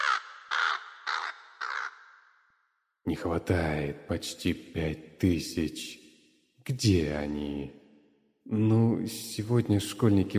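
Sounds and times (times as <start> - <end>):
crow cawing: 0.0 - 2.7
speech: 3.1 - 6.0, 6.6 - 7.8, 8.5 - 10.3.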